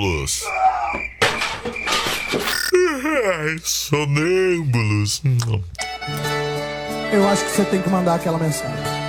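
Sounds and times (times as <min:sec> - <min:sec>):
speech: 0:00.0 - 0:01.8, 0:03.2 - 0:06.5, 0:07.1 - 0:08.9
chorus of frogs croaking: 0:00.0 - 0:03.5
brief rising warbling call: 0:02.4 - 0:02.9.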